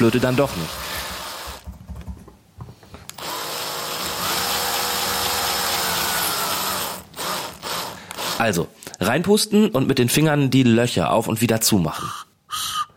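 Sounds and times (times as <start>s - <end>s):
speech: 0.0s - 0.9s, 8.4s - 12.3s
power drill boring finger holes into a carrot flute: 0.0s - 1.6s, 3.1s - 8.5s
knocks and handling sounds: 1.4s - 3.2s.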